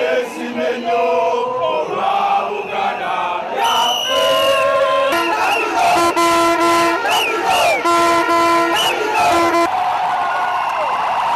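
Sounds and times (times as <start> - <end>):
large crowd cheering and chanting outdoors: 0.0 - 11.3
loud sustained horn- or siren-like tones blaring: 4.2 - 9.7.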